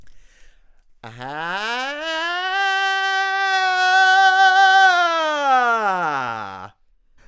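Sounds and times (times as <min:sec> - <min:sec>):
speech: 0:01.0 - 0:01.6
voice in a vocal exercise imitating a whiny crying baby: 0:01.0 - 0:06.7.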